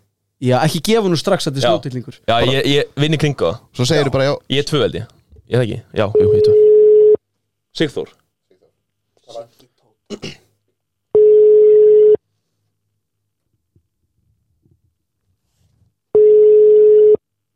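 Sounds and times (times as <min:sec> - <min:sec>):
speech: 0:00.4 - 0:06.6, 0:07.8 - 0:08.2, 0:09.3 - 0:10.4
telephone ringback tone while a call waits to be answered: 0:06.2 - 0:07.2, 0:11.2 - 0:12.2, 0:16.2 - 0:17.2.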